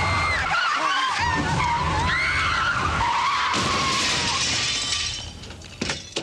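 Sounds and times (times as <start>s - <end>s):
car tires screeching while skidding: 0.0s - 4.9s
car crashing into shop window: 1.2s - 6.2s
falling debris clinking: 3.5s - 6.2s
shop window glass shattering: 3.5s - 6.2s.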